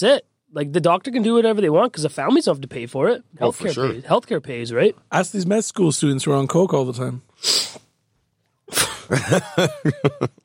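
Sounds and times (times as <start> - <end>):
speech: 0.0 - 7.7, 8.7 - 10.4
brief hiss: 7.4 - 7.9
laughter: 9.0 - 10.4.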